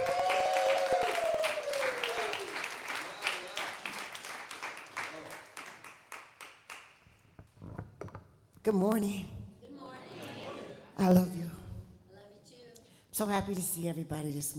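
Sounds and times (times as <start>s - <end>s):
crowd cheering: 0.0s - 5.8s
crowd applause: 0.0s - 7.0s
speech: 8.7s - 9.4s, 11.0s - 11.4s, 13.2s - 14.5s.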